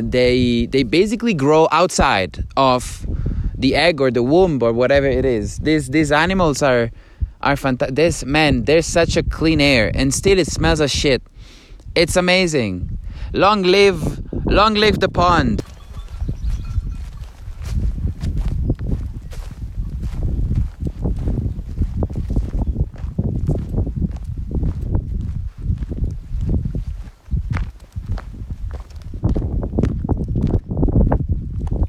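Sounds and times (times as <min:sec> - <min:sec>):
speech: 0:00.0 - 0:11.3, 0:12.0 - 0:15.7
low wind rumble: 0:00.0 - 0:31.8
goat hooves clopping on a hard road: 0:15.6 - 0:31.8.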